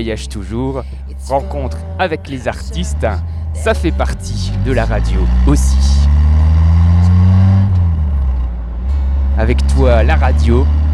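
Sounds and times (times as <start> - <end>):
speech: 0.0 - 6.2, 9.4 - 10.8
car engine humming while driving along a road: 0.0 - 10.9.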